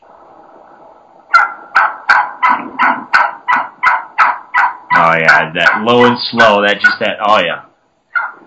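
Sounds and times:
Gould's wild turkey hen yelping excitedly: 1.3s - 7.1s, 8.1s - 8.4s
speech: 5.0s - 7.7s.

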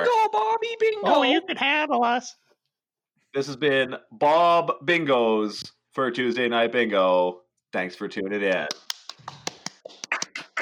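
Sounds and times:
speech: 0.6s - 2.4s, 3.3s - 9.4s
scattered hand clapping: 8.4s - 10.6s.

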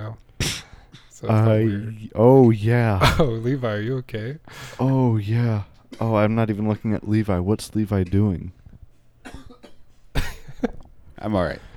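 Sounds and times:
harsh coughs: 0.4s - 1.2s, 9.2s - 10.9s
speech: 1.2s - 8.6s, 11.2s - 11.7s.

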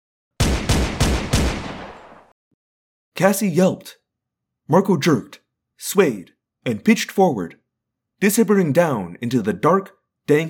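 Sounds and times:
police officer's pistol firing: 0.4s - 2.3s
speech: 3.2s - 4.0s, 4.7s - 7.6s, 8.2s - 10.4s.

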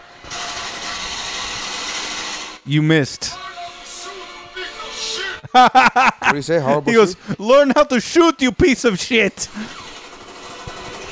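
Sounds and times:
remote control garage door opener for a cave running: 0.0s - 2.6s, 9.5s - 11.1s
speech: 2.7s - 3.4s, 5.5s - 9.8s
laughter: 5.3s - 9.7s.

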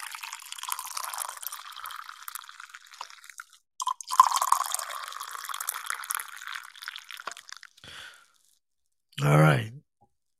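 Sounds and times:
coffee being poured into a cup: 0.0s - 7.8s
speech: 9.2s - 9.7s.

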